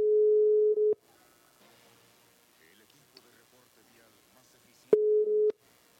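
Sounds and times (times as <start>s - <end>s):
ringback tone of an outgoing telephone call: 0.0s - 1.0s, 5.0s - 5.5s.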